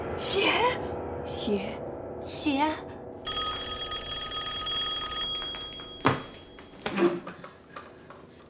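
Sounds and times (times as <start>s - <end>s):
speech: 0.2s - 3.0s, 7.0s - 7.4s
telephone ringing with an electronic tone: 3.2s - 6.8s.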